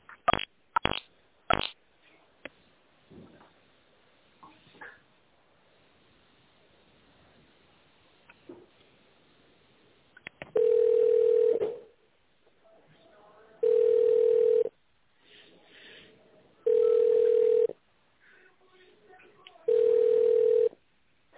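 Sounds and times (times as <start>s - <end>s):
telephone line beeps while a call is transferred: 10.6s - 11.6s, 13.6s - 14.7s, 16.7s - 17.7s, 19.7s - 20.7s.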